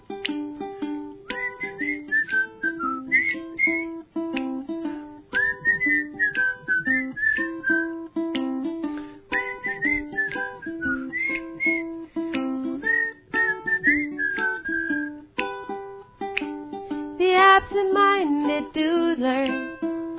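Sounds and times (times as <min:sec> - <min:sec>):
plucked instrumental accompaniment: 0:00.0 - 0:20.1
person whistling a lilting wandering tune: 0:01.2 - 0:04.0, 0:05.3 - 0:08.1, 0:08.9 - 0:15.3.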